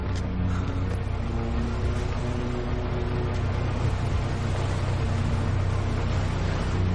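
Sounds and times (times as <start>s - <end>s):
ferry engines droning as it pulls away from the pier: 0.0s - 6.9s
water churning: 1.1s - 6.9s.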